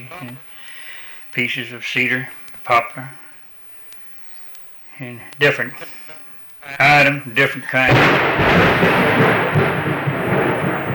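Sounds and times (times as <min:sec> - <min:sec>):
speech: 0:00.0 - 0:03.2, 0:05.0 - 0:06.0, 0:06.6 - 0:09.6
deep sustained thunder rumbling: 0:07.8 - 0:10.9.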